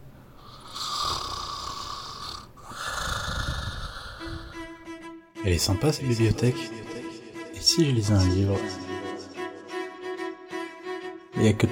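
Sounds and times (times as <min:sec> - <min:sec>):
tired person snoring while dozing off: 0:00.4 - 0:04.8
speech: 0:05.4 - 0:06.8, 0:07.8 - 0:08.8, 0:11.4 - 0:11.7.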